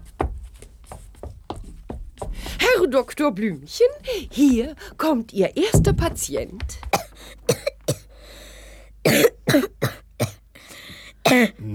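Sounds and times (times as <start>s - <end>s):
speech: 2.6s - 6.9s, 9.0s - 9.9s, 11.3s - 11.7s
child's harsh rasping hacking coughs: 6.9s - 8.1s, 9.0s - 10.4s, 11.2s - 11.6s
short gasping breaths: 7.0s - 9.0s, 10.6s - 11.7s.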